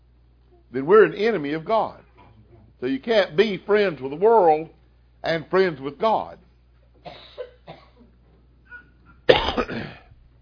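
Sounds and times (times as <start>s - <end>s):
speech: 0.7s - 2.0s, 2.8s - 7.2s
person coughing: 7.0s - 8.1s, 8.7s - 10.2s.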